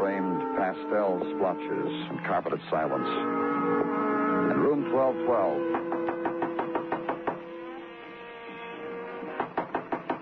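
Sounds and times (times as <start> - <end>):
faint jazz from a radio inside the room: 0.0 - 5.8
speech: 0.8 - 5.8
firm knocking on a hotel room door: 5.6 - 7.5, 9.2 - 10.2.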